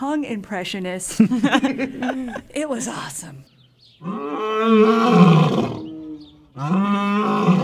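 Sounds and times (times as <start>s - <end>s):
speech: 0.0s - 5.8s, 6.6s - 7.6s
laughter: 1.1s - 3.0s
African lions roaring to each other on a cold sunny afternoon: 4.0s - 7.6s.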